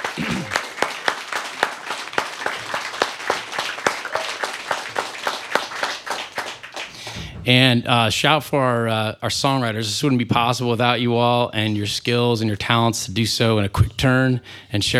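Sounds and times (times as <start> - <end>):
audience applause: 0.0 - 7.6
speech: 7.5 - 14.9.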